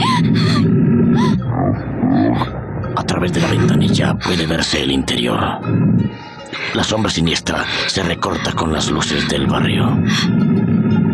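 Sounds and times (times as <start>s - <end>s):
tiger roaring with a deep rough growl: 0.6s - 2.5s
speech: 3.2s - 10.8s.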